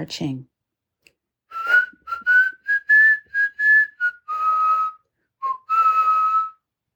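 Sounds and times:
speech: 0.0 - 0.5
person whistling a bouncy marching tune in a tunnel: 1.5 - 6.6.

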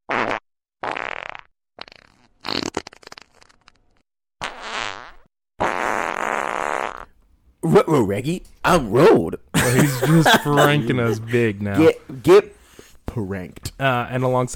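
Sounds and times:
loud string of fart sounds: 0.1 - 7.2
speech: 7.9 - 12.6, 13.2 - 14.5
laughter: 9.5 - 12.0.

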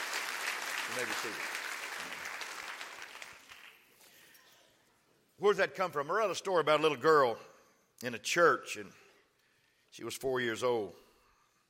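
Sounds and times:
crowd clapping hands in applause: 0.0 - 4.0
speech: 0.9 - 2.2, 5.4 - 9.0, 9.9 - 11.0.

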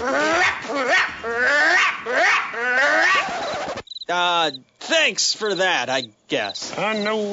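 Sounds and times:
dog barking aggressively: 0.3 - 3.3
speech: 4.5 - 7.3.

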